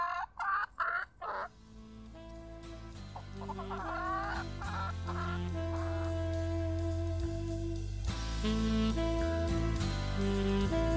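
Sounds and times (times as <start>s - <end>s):
domestic hen clucking in a garden: 0.0s - 1.8s, 3.2s - 5.9s
instrumental music: 1.5s - 10.9s.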